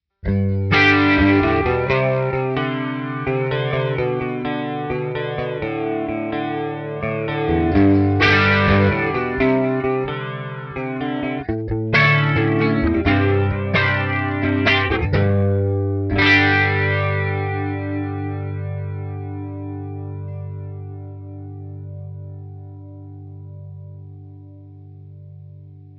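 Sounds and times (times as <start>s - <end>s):
rock guitar with flanger effect: 0.2s - 25.9s.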